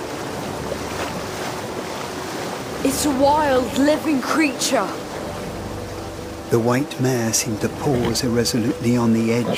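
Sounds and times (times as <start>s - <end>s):
raging river floodwater roaring: 0.0s - 9.5s
speech: 2.8s - 5.0s, 6.5s - 9.5s.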